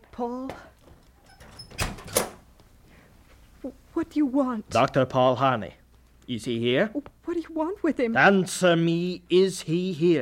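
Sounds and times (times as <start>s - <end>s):
speech: 0.2s - 0.7s, 3.6s - 10.2s
door being opened with dull thuds: 1.3s - 2.5s.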